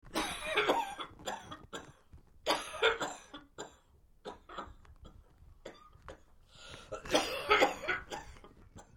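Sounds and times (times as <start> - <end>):
woman coughing and clearing throat: 0.2 - 1.9, 2.5 - 4.8, 7.0 - 8.9.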